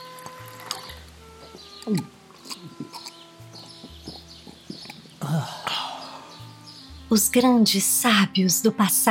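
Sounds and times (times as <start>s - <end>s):
water poured from a large jug: 0.0s - 1.4s
speech: 1.8s - 2.2s, 7.1s - 9.0s.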